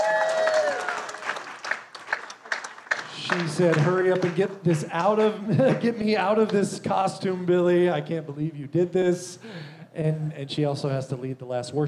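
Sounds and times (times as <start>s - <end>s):
audience clapping: 0.0s - 6.6s
speech: 3.3s - 11.8s.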